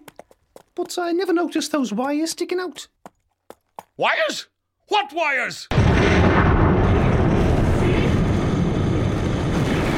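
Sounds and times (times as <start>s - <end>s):
speech: 0.8s - 3.0s, 4.0s - 6.3s
massive sustained roar of a big explosion: 5.7s - 9.9s.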